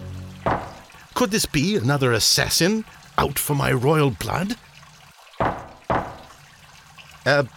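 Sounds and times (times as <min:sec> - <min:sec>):
knocks on wood inside a crate: 0:00.5 - 0:00.8, 0:05.4 - 0:06.3
speech: 0:01.2 - 0:04.7, 0:07.3 - 0:07.5.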